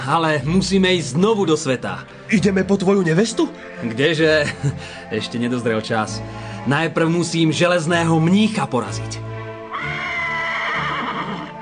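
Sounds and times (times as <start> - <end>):
speech: 0.0 - 9.3
frightened horse whinnying: 9.7 - 11.5.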